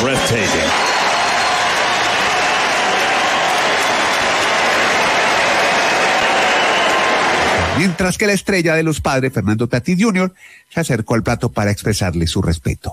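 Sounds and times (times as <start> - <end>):
huge stadium crowd applauding and cheering: 0.0 - 8.2
speech: 0.3 - 0.9, 7.8 - 12.9.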